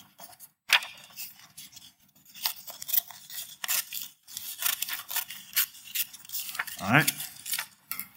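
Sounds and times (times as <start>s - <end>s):
scissors cutting a strip of paper for a craft: 0.0s - 8.1s
speech: 6.9s - 7.2s.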